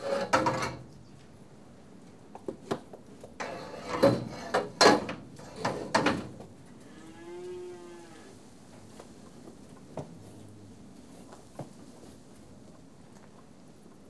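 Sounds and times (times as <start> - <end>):
metallic clanks and knocks: 0.0 - 0.9, 3.4 - 6.4
cattle being tested mooing: 6.8 - 8.4.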